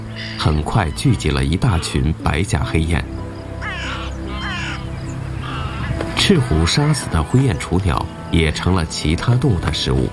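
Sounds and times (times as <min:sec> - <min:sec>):
crows cawing: 0:00.0 - 0:02.0, 0:03.4 - 0:07.2
speech: 0:00.2 - 0:03.2, 0:06.3 - 0:10.1.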